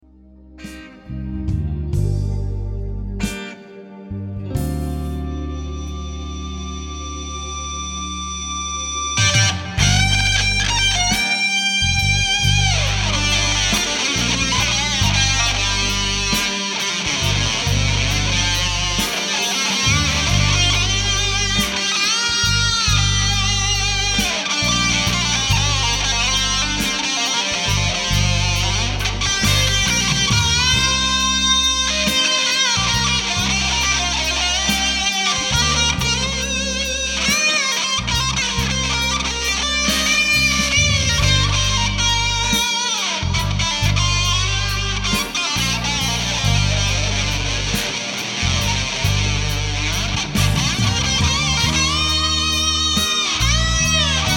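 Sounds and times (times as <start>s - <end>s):
boosted fuzz guitar tone: 0.0s - 54.3s.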